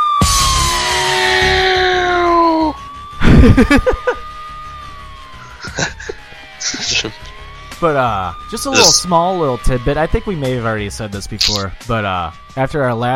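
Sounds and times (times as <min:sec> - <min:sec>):
loud sustained siren wail: 0:00.0 - 0:13.1
laughter: 0:03.2 - 0:04.2, 0:05.4 - 0:07.2, 0:08.8 - 0:09.0
speech: 0:03.4 - 0:04.0, 0:06.7 - 0:07.2, 0:07.8 - 0:13.1
short voiced bursts: 0:08.7 - 0:09.0, 0:11.4 - 0:11.7.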